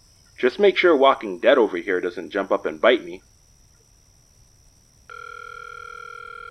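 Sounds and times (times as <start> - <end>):
quiet hiss: 0.0 - 6.4
speech: 0.4 - 3.3
phone line ringing tone before voicemail: 5.1 - 6.4.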